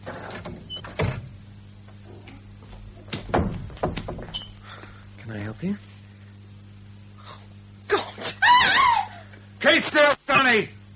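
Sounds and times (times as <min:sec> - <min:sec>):
doors opening with mechanical whirring: 0:00.0 - 0:04.7
steady low hum: 0:00.0 - 0:10.9
speech: 0:05.3 - 0:05.9, 0:09.8 - 0:10.8.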